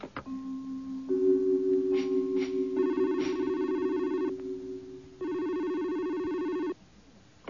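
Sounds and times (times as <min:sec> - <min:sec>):
telephone ringing with electronic tones: 0:00.3 - 0:06.8.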